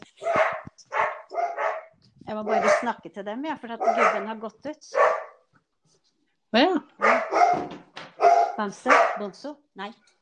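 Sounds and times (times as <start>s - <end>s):
dogs barking: 0.2s - 3.0s, 3.7s - 5.5s, 7.0s - 9.4s
speech: 2.3s - 5.2s, 6.5s - 7.0s, 8.6s - 10.2s.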